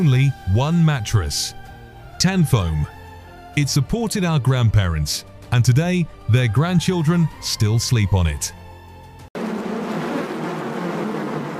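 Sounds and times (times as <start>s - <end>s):
speech: 0.0s - 1.6s, 2.2s - 3.0s, 3.6s - 8.6s
many honeybees buzzing: 9.4s - 11.5s.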